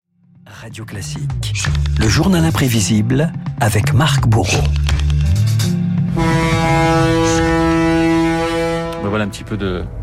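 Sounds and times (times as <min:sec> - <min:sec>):
speech: 0:00.6 - 0:05.0, 0:09.0 - 0:10.0
deep foghorn blast of an ocean liner: 0:06.1 - 0:10.0.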